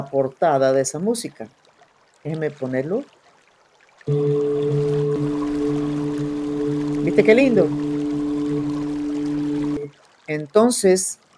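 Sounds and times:
speech: 0.0 - 1.6, 2.2 - 3.2, 4.0 - 5.0, 7.2 - 7.8, 10.3 - 11.2
steady rush of flowing water: 1.6 - 10.3
low sustained hum: 4.1 - 9.9.

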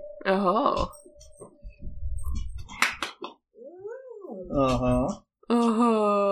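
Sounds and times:
speech: 0.2 - 1.5, 4.5 - 6.3
dog whining for attention: 3.6 - 5.1.

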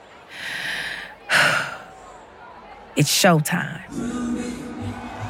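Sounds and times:
person taking a deep breath backstage in a dressing room before going on stage: 0.3 - 1.9
speech: 3.0 - 4.4.

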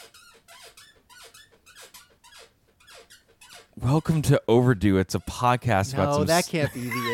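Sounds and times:
squeaky chair creaking: 0.0 - 4.4, 5.1 - 5.5
speech: 3.8 - 7.1
laughter: 5.8 - 7.1.

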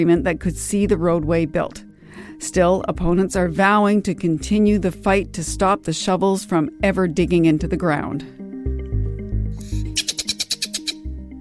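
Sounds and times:
speech: 0.0 - 1.8, 2.4 - 8.4
black-footed ferret kit low buzzy hums: 9.6 - 11.0.

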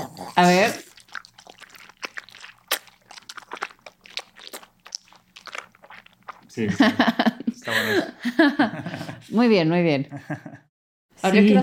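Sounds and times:
speech: 0.4 - 0.8, 6.6 - 7.2, 7.9 - 10.5, 11.2 - 11.6
crisp crunching of a celery stalk: 0.7 - 6.6
laughter: 6.6 - 9.3, 10.1 - 10.7.

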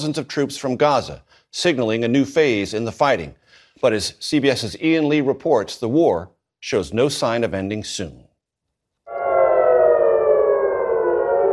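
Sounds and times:
speech: 0.0 - 8.3
air raid siren in Israel warning of rocket fire: 9.1 - 11.5.

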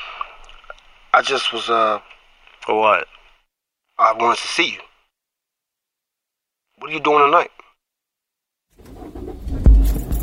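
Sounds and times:
speech: 1.2 - 3.2, 4.0 - 4.9, 6.8 - 7.6
car engine cranking and starting: 8.8 - 10.2.

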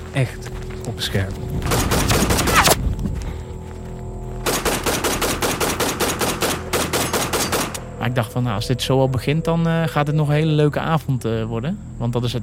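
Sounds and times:
speech: 0.2 - 2.5, 8.0 - 12.4
gunfire aimed at a group: 1.6 - 2.8, 4.4 - 7.8.

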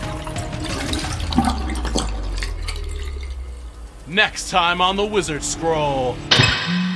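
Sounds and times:
toilet flushing with churning water and gurgling rumble: 0.0 - 4.2
speech: 4.1 - 6.8.

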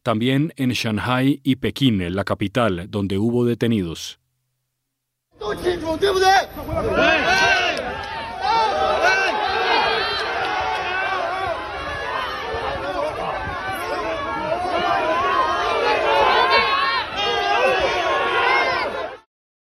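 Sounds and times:
speech: 0.0 - 4.2, 5.4 - 9.4
large crowd of protesters shouting and chanting: 5.4 - 19.3.

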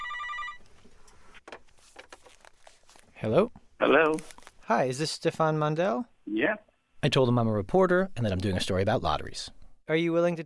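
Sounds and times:
phone line noise: 0.0 - 0.6
telephone ringing on an outgoing call to a mobile phone: 0.0 - 0.6
speech: 3.2 - 10.4.

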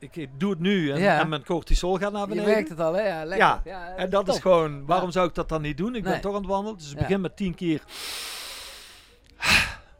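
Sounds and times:
speech: 0.0 - 8.3
slow breathy exhalation during a breathing exercise while walking: 7.9 - 9.9.

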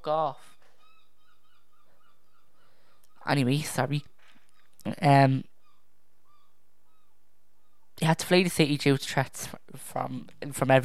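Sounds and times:
speech: 0.0 - 0.5, 3.2 - 4.1, 4.8 - 5.5, 8.0 - 10.8
seagulls calling outdoors: 0.4 - 7.9.

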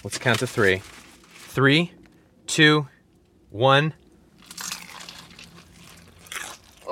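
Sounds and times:
speech: 0.0 - 1.0, 1.6 - 2.9, 3.5 - 4.0
softer chewing: 4.4 - 6.9
teeth biting into crunchy fried chicken: 4.4 - 6.9.

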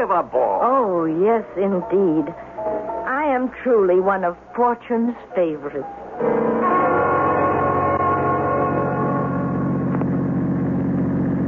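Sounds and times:
speech: 0.0 - 2.8, 3.4 - 6.7
car engine droning while driving at night: 6.2 - 11.4.

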